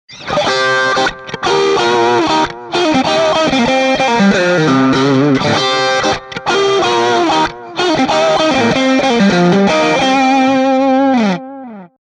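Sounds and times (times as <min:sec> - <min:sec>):
guitar licks on mid bridge pickup: 0:00.1 - 0:11.9.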